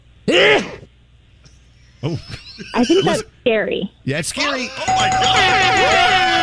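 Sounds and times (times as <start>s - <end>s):
loud forceful human dad sneeze: 0.3s - 0.9s
laughter: 2.0s - 3.3s
speech: 2.0s - 6.2s.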